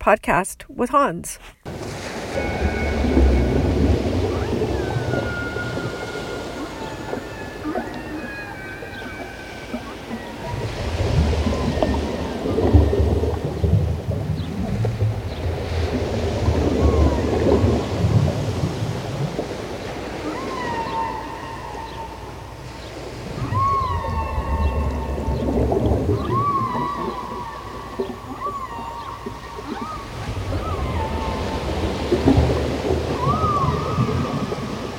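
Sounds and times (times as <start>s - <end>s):
speech: 0.0s - 2.8s
low surging rumble of deep-sea underwater ambience: 1.7s - 34.9s
high rising tonal calls in the deep sea: 1.8s - 13.7s, 19.8s - 34.8s.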